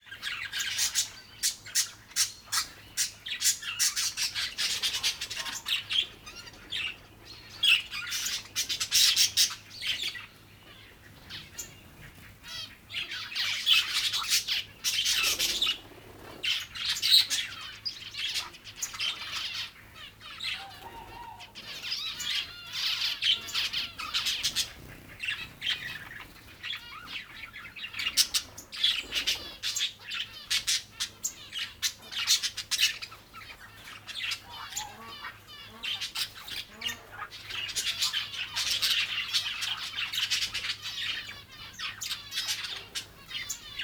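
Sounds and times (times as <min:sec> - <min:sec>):
exotic birds: 0:00.0 - 0:43.8.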